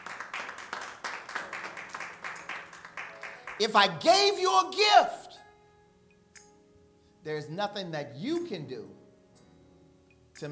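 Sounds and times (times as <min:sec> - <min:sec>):
audience clapping: 0:00.0 - 0:04.2
speech: 0:03.6 - 0:05.2, 0:07.2 - 0:09.0.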